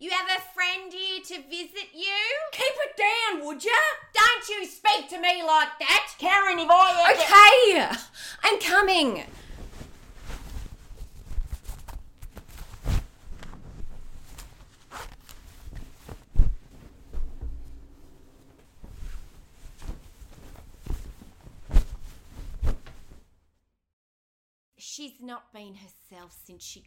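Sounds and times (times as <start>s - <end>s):
speech: 0.1s - 9.4s, 25.0s - 26.8s
shuffling and rustling: 9.3s - 23.4s
heavy stomping footsteps down a staircase: 15.6s - 21.7s.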